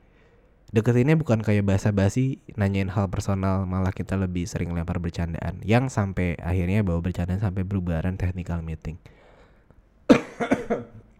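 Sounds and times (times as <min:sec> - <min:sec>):
speech: 0:00.7 - 0:09.2
person coughing: 0:10.1 - 0:11.0.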